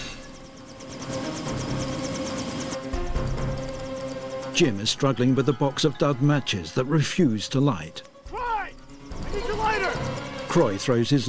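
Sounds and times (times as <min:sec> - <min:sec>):
helicopter engine roar: 0:00.0 - 0:05.5, 0:08.1 - 0:11.2
helicopter rotor chopping: 0:00.0 - 0:06.6, 0:07.6 - 0:11.2
speech: 0:04.6 - 0:08.1, 0:10.5 - 0:11.2.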